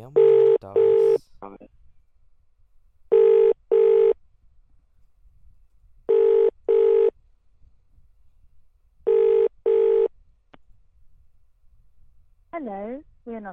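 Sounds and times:
telephone ringback tone while call connects: 0:00.2 - 0:01.2, 0:03.1 - 0:04.2, 0:06.1 - 0:07.2, 0:09.1 - 0:10.1
speech: 0:12.6 - 0:13.5.

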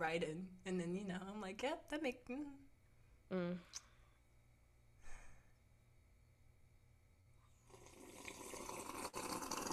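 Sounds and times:
speech: 0:00.0 - 0:02.7, 0:03.3 - 0:03.9
slurping a hot drink: 0:07.5 - 0:09.7.

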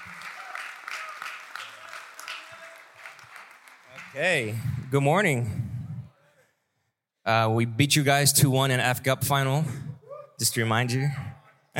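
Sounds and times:
audience applause for a speaker: 0:00.0 - 0:05.1
speech: 0:04.1 - 0:05.6, 0:07.3 - 0:11.7.

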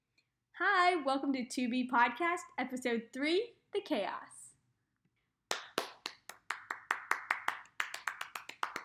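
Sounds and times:
speech: 0:00.6 - 0:04.3
single person clapping hands: 0:05.5 - 0:08.8.

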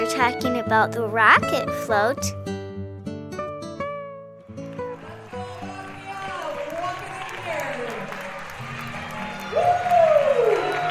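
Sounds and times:
speech: 0:00.2 - 0:02.4
crowd cheering and applauding at a celebration with floats: 0:04.6 - 0:10.9.

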